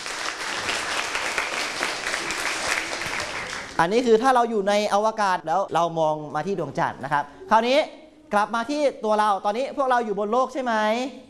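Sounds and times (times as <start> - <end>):
group of people clapping together in a classroom: 0.0 - 4.0
speech: 3.8 - 11.2.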